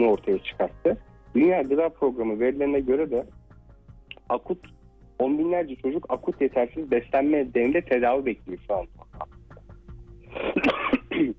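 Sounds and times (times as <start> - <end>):
speech: 0.0 - 3.5, 4.3 - 9.3, 10.3 - 11.3
person recovering from a recent illness coughing: 10.4 - 11.3.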